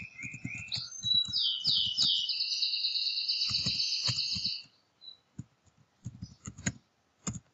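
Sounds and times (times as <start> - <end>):
computer keyboard typing: 0.0 - 2.3, 3.4 - 4.7, 5.4 - 7.5
high twittering chirp: 0.0 - 5.3.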